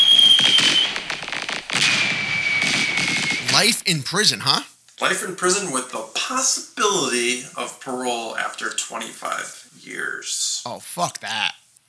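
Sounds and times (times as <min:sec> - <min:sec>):
high whistling tone of fireworks: 0:00.0 - 0:04.5
fireworks crackling and popping: 0:00.0 - 0:05.8
speech: 0:03.6 - 0:11.6.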